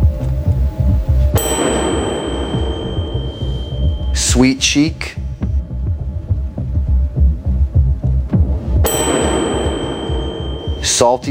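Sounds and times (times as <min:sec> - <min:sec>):
steady low throbbing pulse: 0:00.0 - 0:11.3
single bell struck and ringing: 0:01.4 - 0:05.4, 0:08.9 - 0:11.3
speech: 0:04.4 - 0:05.2, 0:11.0 - 0:11.3.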